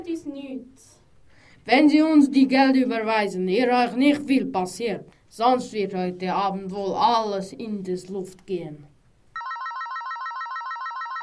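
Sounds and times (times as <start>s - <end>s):
speech: 0.0s - 1.0s, 1.6s - 8.9s
mobile phone ringtone trill: 9.4s - 11.2s.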